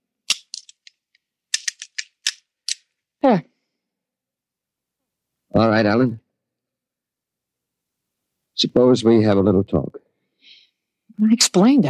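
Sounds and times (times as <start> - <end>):
firing pin fitted back into a disassembled pistol: 0.3 - 2.9
speech: 3.2 - 3.5, 5.5 - 6.2, 8.6 - 10.0, 11.2 - 11.8.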